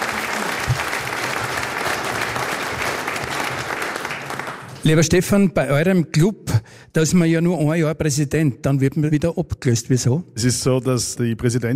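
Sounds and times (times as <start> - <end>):
audience applause: 0.0 - 4.9
speech: 4.8 - 11.7.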